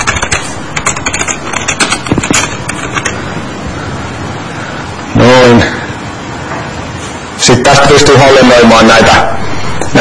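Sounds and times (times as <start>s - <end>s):
typing a name on a computer keyboard: 0.0s - 3.2s
speech: 7.4s - 9.9s.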